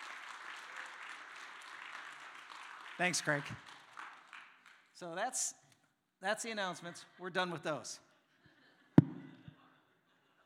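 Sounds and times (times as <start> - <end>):
church audience applause: 0.0 - 4.7
speech: 3.0 - 3.8, 5.0 - 5.6, 6.2 - 8.1.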